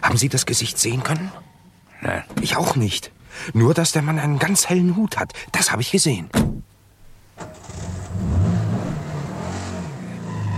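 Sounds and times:
speech: 0.1 - 6.6
car engine cranking, revving and rumbling as the car pulls away: 7.4 - 10.5.

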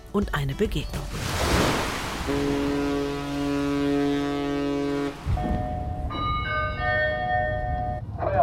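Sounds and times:
speech: 0.2 - 2.9
wind at sea: 0.9 - 8.4
ferry churning through open water: 1.1 - 5.8
deep ferry horn blasting: 1.9 - 8.0
higher tonal horn or signal notes: 2.0 - 8.0.

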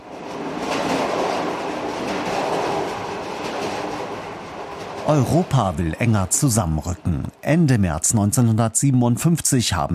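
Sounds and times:
Trans-Europe-Express train running on rails: 0.0 - 9.9
faint rhythmic clatter of train wheels: 0.1 - 6.4
speech: 5.1 - 9.9.

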